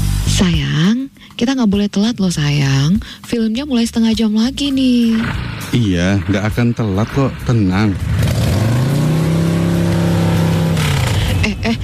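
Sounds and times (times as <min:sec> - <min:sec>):
speech: 0:00.4 - 0:08.3
motorcycle engine droning while riding: 0:05.0 - 0:11.8.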